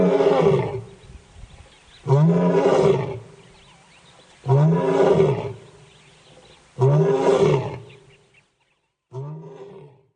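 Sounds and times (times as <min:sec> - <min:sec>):
lion roaring: 0:02.0 - 0:03.3, 0:04.4 - 0:05.6, 0:06.8 - 0:08.0, 0:09.1 - 0:10.1.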